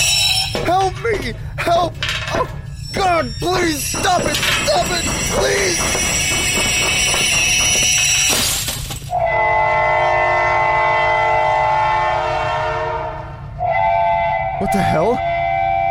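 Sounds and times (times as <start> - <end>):
clattering train wheels: 0.0 - 9.2
heritage railway train rumbling as it arrives: 0.0 - 15.8
speech: 0.6 - 8.5, 14.6 - 15.3
heritage railway train horn blast: 9.1 - 15.8.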